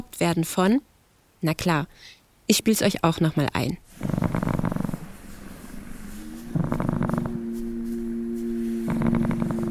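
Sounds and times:
speech: 0.1 - 4.3
cat purring: 3.8 - 7.5, 8.8 - 9.6.

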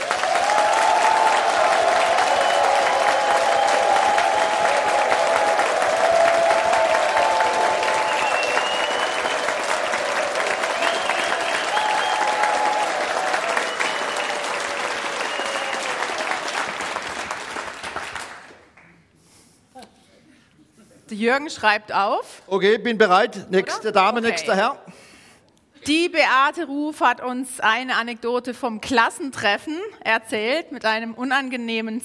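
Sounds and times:
audience applause: 0.0 - 19.0
faint whoops from audience: 0.1 - 16.2
speech: 21.2 - 24.8, 25.8 - 32.0.

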